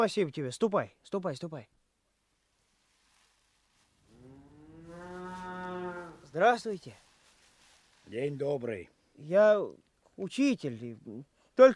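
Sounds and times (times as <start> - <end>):
speech: 0.0 - 1.8, 6.3 - 7.0, 8.1 - 11.7
cow mooing: 4.1 - 6.3.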